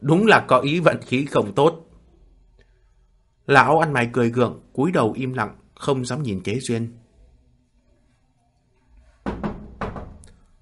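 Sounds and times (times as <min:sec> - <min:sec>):
speech: 0:00.0 - 0:01.9, 0:03.5 - 0:07.0
knocking on a room door: 0:09.2 - 0:10.3.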